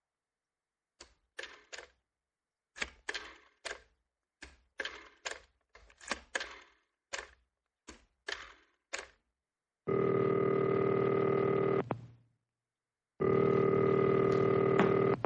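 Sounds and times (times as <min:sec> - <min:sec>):
telephone ringing unanswered: 0:09.9 - 0:11.9, 0:13.2 - 0:15.2.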